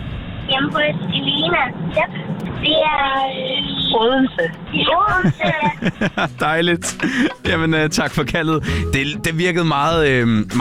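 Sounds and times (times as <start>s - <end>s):
road hum inside a moving car: 0.0s - 10.6s
steady low car engine rumble: 0.0s - 10.6s
speech: 0.6s - 10.6s
laughter: 5.1s - 9.0s.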